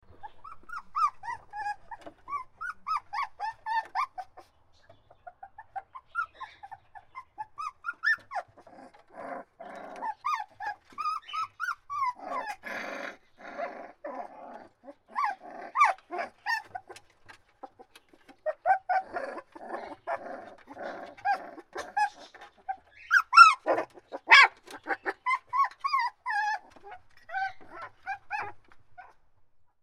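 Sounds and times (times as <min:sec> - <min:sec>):
puppies crying: 0:00.1 - 0:04.5, 0:05.2 - 0:29.2.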